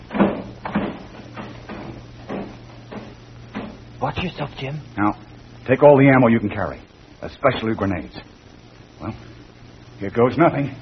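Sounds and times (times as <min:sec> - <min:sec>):
back door being worked open: 0:00.1 - 0:03.8
speech: 0:04.0 - 0:08.4, 0:09.0 - 0:09.3, 0:10.0 - 0:10.7.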